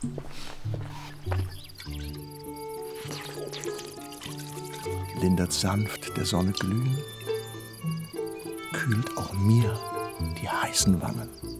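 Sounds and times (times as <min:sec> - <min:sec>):
speech: 0:00.0 - 0:01.4, 0:05.2 - 0:07.2, 0:08.7 - 0:11.5
soft sustained musical backdrop: 0:00.0 - 0:11.5
water being poured: 0:01.8 - 0:07.4.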